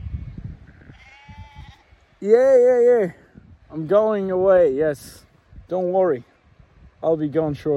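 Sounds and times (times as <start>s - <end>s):
sheep bleating: 0.7s - 2.1s
speech: 2.2s - 6.3s, 7.0s - 7.7s.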